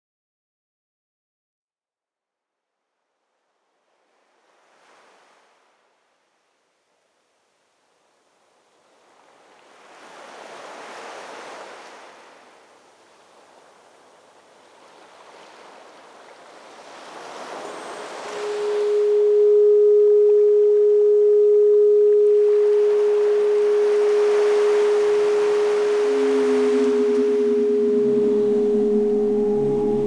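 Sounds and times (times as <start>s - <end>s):
soft singing bowls: 17.4s - 30.0s.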